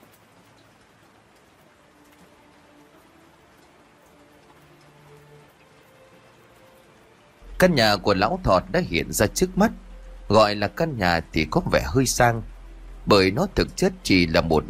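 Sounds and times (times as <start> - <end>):
faint steady drizzle of rain: 0.0 - 14.6
speech: 7.6 - 14.6.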